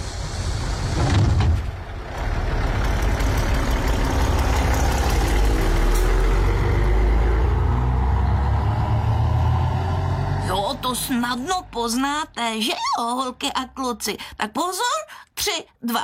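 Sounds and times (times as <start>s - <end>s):
bus engine running during a bus ride to the water: 0.0s - 14.0s
speech: 11.1s - 16.0s.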